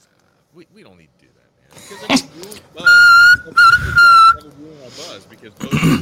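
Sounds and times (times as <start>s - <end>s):
speech: 0.5s - 5.9s
referee's halftime whistle blasts: 2.9s - 4.4s.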